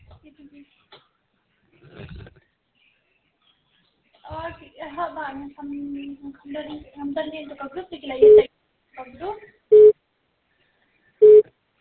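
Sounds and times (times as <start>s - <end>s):
speech: 4.8s - 9.5s
telephone busy signal: 9.7s - 9.9s, 11.2s - 11.4s.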